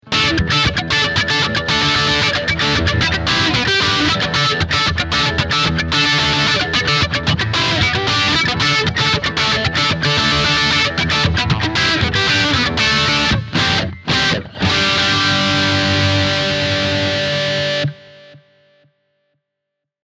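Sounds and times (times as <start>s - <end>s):
classic rock crunch guitar: 0.0s - 18.5s.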